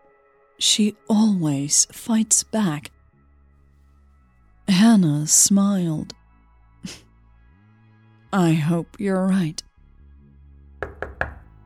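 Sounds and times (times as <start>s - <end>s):
speech: 0.6s - 3.0s, 4.7s - 6.2s, 6.8s - 7.0s, 8.3s - 9.7s
firm knocks on a door: 10.8s - 11.6s.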